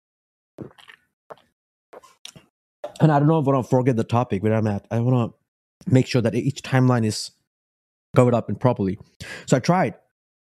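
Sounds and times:
wet slurps and mouth plops: 0:00.6 - 0:02.4
sipping a drink: 0:00.6 - 0:03.0
speech: 0:03.0 - 0:07.4, 0:08.1 - 0:10.0.

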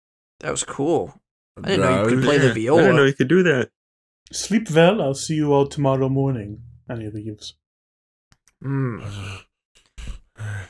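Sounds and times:
speech: 0:00.4 - 0:07.6, 0:08.6 - 0:09.5
heavy breathing with voiced groaning sighs: 0:08.7 - 0:10.6.

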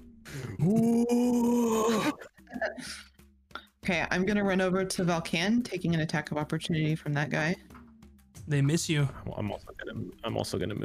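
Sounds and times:
player vocally imitating a roar: 0:00.4 - 0:02.2
speech: 0:00.6 - 0:01.4, 0:03.9 - 0:07.7, 0:08.5 - 0:10.8.

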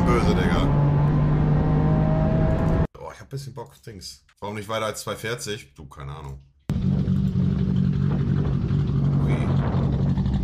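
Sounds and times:
Toyota Supra with huge turbo accelerating hard: 0:00.0 - 0:02.9, 0:06.7 - 0:10.4
speech: 0:03.3 - 0:06.5.

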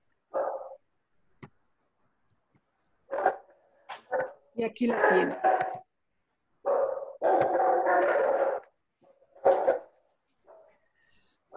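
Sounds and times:
dogs barking: 0:00.3 - 0:00.8, 0:03.1 - 0:05.9, 0:06.6 - 0:10.8
speech: 0:04.6 - 0:05.6.

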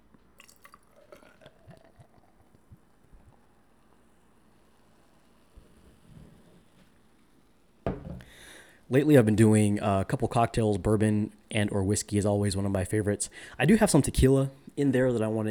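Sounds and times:
light beer pouring into a glass: 0:00.1 - 0:06.5
thump: 0:07.9 - 0:08.3
speech: 0:08.9 - 0:15.4.

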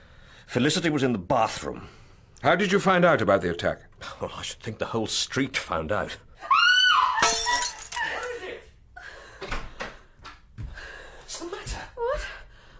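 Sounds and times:
speech: 0:00.5 - 0:06.2
high strained cry: 0:06.4 - 0:07.3
drinking glass smashing on a hard floor: 0:07.2 - 0:08.3.

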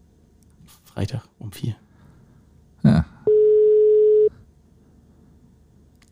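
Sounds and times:
speech: 0:01.0 - 0:01.9
quiet phone line hiss: 0:03.3 - 0:04.3
telephone ringback tone of an unanswered call to a radio listener: 0:03.3 - 0:04.3.

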